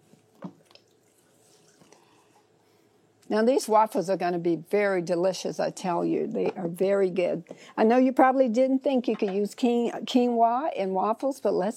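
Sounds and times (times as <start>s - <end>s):
quiet drips of almond milk: 0.1s - 3.3s
unsweetened almond milk being poured while making quinoa waffles: 0.2s - 2.5s
speech: 3.3s - 11.7s.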